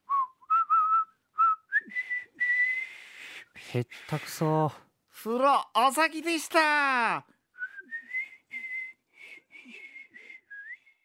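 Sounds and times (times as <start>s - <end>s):
person whistling a cheerful tune: 0.0s - 3.4s, 7.6s - 11.0s
speech: 3.7s - 7.3s.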